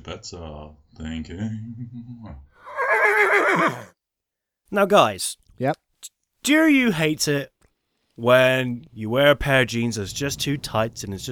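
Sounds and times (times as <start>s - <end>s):
speech: 0.0s - 4.0s, 4.7s - 7.5s, 8.2s - 11.3s
horse neighing: 2.6s - 3.9s.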